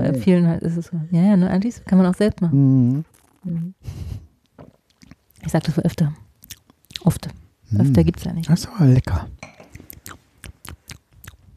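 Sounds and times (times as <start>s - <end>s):
speech: 0.1s - 4.2s, 5.4s - 6.2s, 7.0s - 9.5s
chewing roasted almonds: 3.0s - 3.6s, 4.9s - 7.1s, 9.7s - 11.5s.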